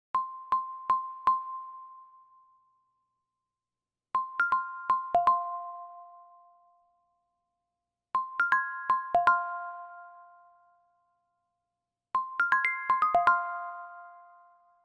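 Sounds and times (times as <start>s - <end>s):
iPhone ringtone: 4.2s - 6.6s, 8.2s - 10.8s, 12.2s - 14.8s.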